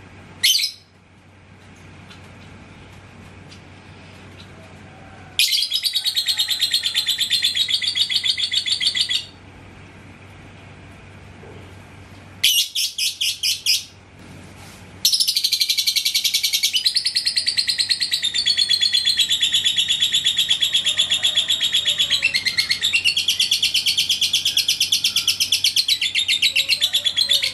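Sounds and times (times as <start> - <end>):
lovebird chattering: 5.4 - 9.4, 12.4 - 13.9, 15.1 - 27.5.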